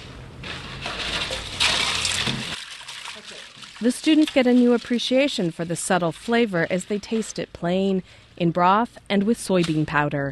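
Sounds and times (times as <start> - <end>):
water splashing as soba noodles are plunged into an ice water bath: 0.4 - 7.5
speech: 3.8 - 10.3.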